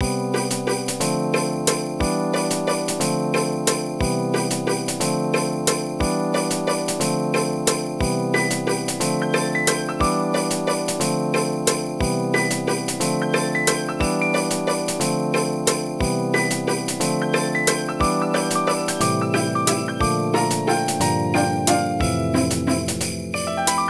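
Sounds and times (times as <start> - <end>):
ice theme music: 0.0 - 23.8.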